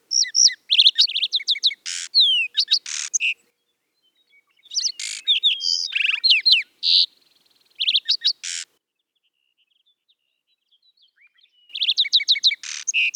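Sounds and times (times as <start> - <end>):
moving sparrow: 0.0 - 13.1.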